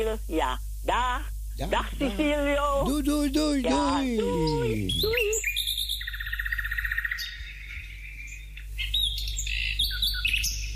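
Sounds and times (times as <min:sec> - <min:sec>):
speech: 0:00.0 - 0:05.5
steady low hum on a phone line: 0:00.0 - 0:10.7
birds chirping and trilling over a phone line: 0:04.4 - 0:10.7.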